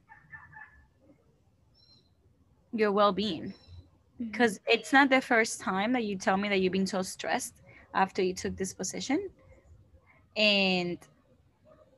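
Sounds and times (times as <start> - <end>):
noise: 0.0 - 11.9
small bird chirping: 1.7 - 2.2, 3.2 - 3.9
speech: 2.7 - 3.6, 4.2 - 9.4, 10.4 - 11.1.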